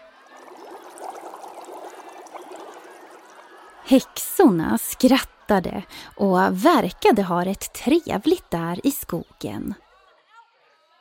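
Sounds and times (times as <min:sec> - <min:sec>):
cauldron brew bubbling: 0:00.0 - 0:04.8
speech: 0:03.9 - 0:09.8.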